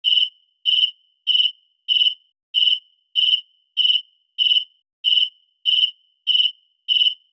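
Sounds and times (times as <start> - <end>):
crickets chirping: 0.0 - 7.3.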